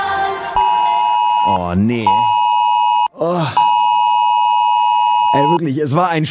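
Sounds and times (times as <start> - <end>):
loud shrill mobile phone beep: 0.6 - 5.6
speech: 1.5 - 2.3, 3.2 - 3.6, 5.3 - 6.2.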